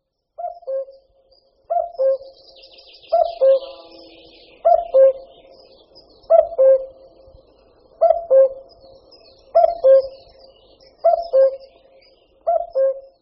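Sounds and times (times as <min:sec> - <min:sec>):
faint high chattering of other birds: 0:00.0 - 0:13.2
common cuckoo calling: 0:00.4 - 0:01.1, 0:01.7 - 0:05.5, 0:06.3 - 0:07.1, 0:08.0 - 0:08.8, 0:09.4 - 0:13.2.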